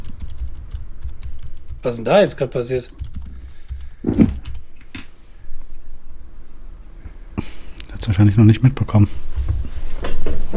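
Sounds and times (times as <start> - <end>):
computer keyboard typing a chat message: 0.0 - 4.6
speech: 1.8 - 3.0, 8.2 - 9.3.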